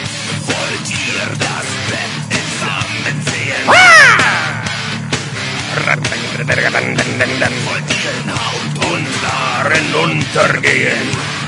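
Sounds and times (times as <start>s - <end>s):
dense loud heavy music: 0.0s - 11.4s
rough shouting: 3.6s - 5.0s
harsh angry screaming: 3.7s - 5.0s
laughter: 5.6s - 8.2s.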